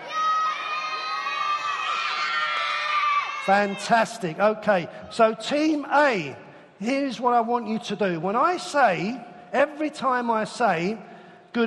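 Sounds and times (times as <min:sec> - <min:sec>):
crowd of children shouting a response together: 0:00.0 - 0:04.1
speech: 0:03.4 - 0:11.6.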